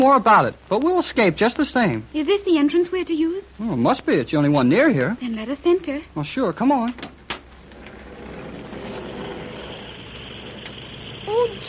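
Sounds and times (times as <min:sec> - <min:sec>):
speech: 0:00.0 - 0:07.1, 0:11.4 - 0:11.6
small propeller airplane droning: 0:08.6 - 0:11.6.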